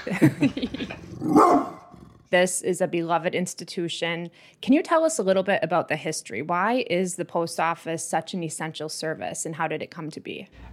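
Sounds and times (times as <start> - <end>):
laughter: 0.0 - 1.1
speech: 0.0 - 10.7
dog barking in short sharp yaps: 1.2 - 1.9.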